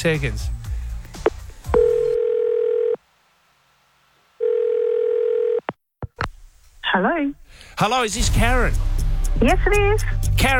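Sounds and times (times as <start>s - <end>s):
speech: 0.0s - 0.6s, 7.0s - 10.5s
phone call ringing out with electronic ring tones: 1.7s - 3.0s, 4.4s - 5.7s.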